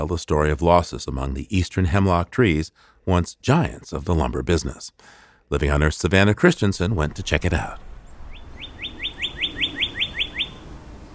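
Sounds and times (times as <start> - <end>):
speech: 0.0 - 7.9
faint outdoor ambience in a forest: 0.0 - 11.1
bird chirping in forest branches: 6.7 - 11.1.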